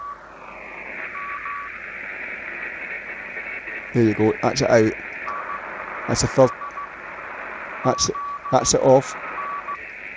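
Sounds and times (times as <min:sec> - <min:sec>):
radio receiver steady tone: 0:00.0 - 0:10.1
speech: 0:03.9 - 0:05.1, 0:06.1 - 0:06.6, 0:07.8 - 0:09.2
Morse code keying on a radio receiver: 0:04.0 - 0:07.0, 0:07.9 - 0:09.8.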